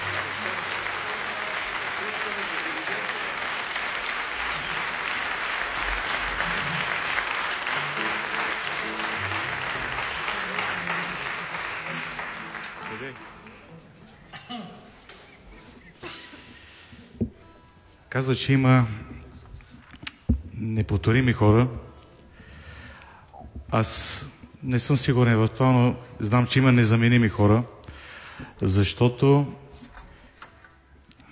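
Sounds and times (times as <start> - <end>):
audience applause: 0.0 - 13.8
speech: 18.2 - 19.0, 20.8 - 21.8, 23.7 - 27.8, 28.6 - 29.6.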